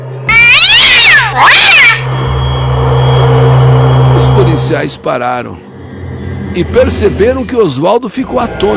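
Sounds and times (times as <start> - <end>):
shrill high-pitched cat meow: 0.3 - 2.0
steady low hum: 1.2 - 8.7
speech: 4.7 - 5.7, 6.6 - 8.7.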